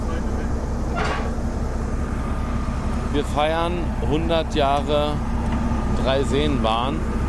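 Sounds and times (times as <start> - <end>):
small old red diesel locomotive rumbling at a railway festival: 0.0 - 7.2
hissing clank of locomotive shunting an open freight wagon: 0.9 - 1.4
speech: 3.2 - 5.3, 6.0 - 7.2.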